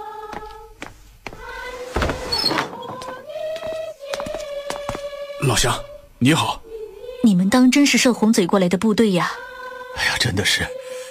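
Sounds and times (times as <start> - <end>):
wooden door creaking open: 1.9 - 3.3
speech: 5.4 - 6.6, 7.2 - 9.4, 10.0 - 10.8.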